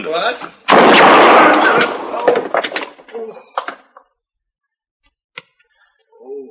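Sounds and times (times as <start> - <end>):
speech: 0.1 - 2.4
gunshot: 0.7 - 3.0.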